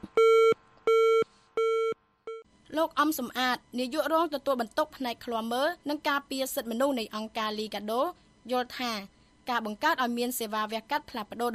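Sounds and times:
telephone tones after a call is hung up: 0.2 - 2.5
speech: 2.8 - 11.5.

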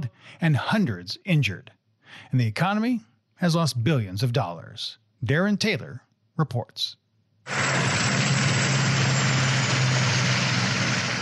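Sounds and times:
speech: 0.3 - 8.0
police helicopter hovering over a highway traffic jam near Durban: 7.5 - 11.2.

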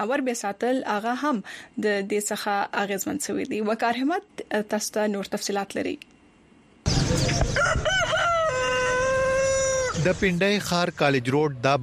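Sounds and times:
speech: 0.0 - 6.1, 6.8 - 8.0, 10.0 - 11.8
rooster crowing loudly at a pet animal market: 7.2 - 10.0.

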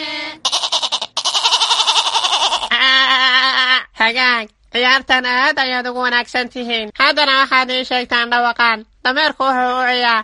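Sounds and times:
person imitating a goat bleating with a wavering tremolo voice: 0.4 - 3.9
speech: 4.0 - 10.2.

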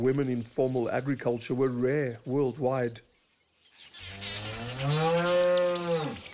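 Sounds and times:
speech: 0.0 - 3.1
Jersey cow mooing on a dairy farm: 4.4 - 6.2.

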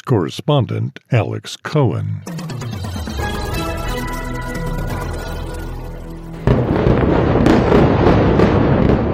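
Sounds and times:
speech: 0.1 - 2.4
steady tonal music-like sound: 2.2 - 7.4
huge explosion near an airport: 6.3 - 9.1.

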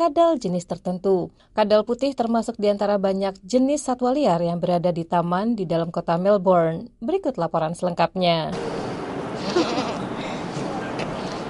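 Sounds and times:
speech: 0.0 - 8.8
faint indistinct murmur: 9.2 - 11.4
goats grazing on weeds bleating in Royal Park Melbourne Australia: 9.4 - 10.0.

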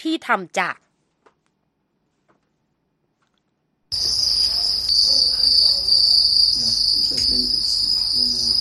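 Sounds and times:
speech: 0.0 - 0.9
dense chorus of crickets trilling at a cricket farm in Kisumu Kenya: 3.9 - 8.6.

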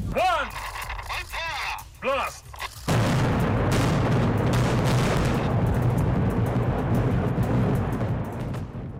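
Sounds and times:
voices calling out: 0.0 - 2.7
demolition blast blowing up nuclear test site tunnels: 2.9 - 8.9.

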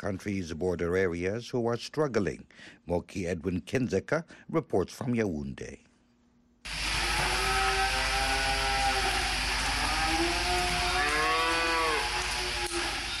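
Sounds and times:
speech: 0.0 - 5.9
cattle mooing: 6.9 - 13.1.

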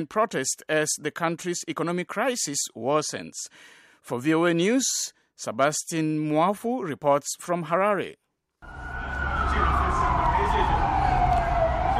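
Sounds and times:
speech: 0.0 - 8.8
siren of a police water cannon vehicle wailing in Harare Zimbabwe: 8.6 - 11.9.

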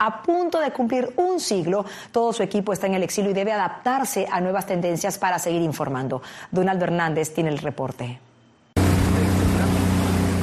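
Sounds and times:
speech: 0.0 - 8.3
motorboat engine droning on the San Juan River: 8.8 - 10.4
rushing water on the San Juan River: 8.8 - 10.4.

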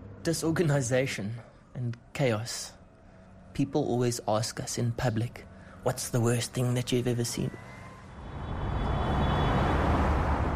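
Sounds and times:
speech: 0.2 - 2.8, 3.6 - 7.7
cars speeding past on a freeway: 7.4 - 10.5.

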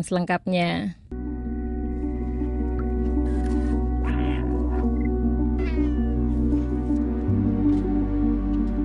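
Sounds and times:
speech: 0.0 - 1.0
low hum shifting pitch: 1.1 - 8.8
steady droning musical background in a video game: 1.1 - 8.8
cat meowing in a video game: 4.0 - 5.0, 5.6 - 6.4.

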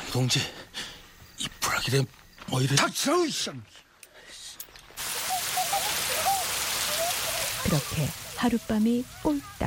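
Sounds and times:
speech: 0.2 - 0.6, 1.8 - 3.8, 7.7 - 9.6
heavy rain pouring down: 5.0 - 9.6.

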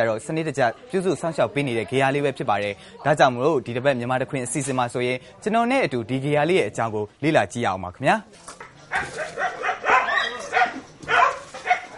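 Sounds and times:
speech: 0.0 - 9.7
dogs barking and yipping at a dog shelter: 8.9 - 11.9.

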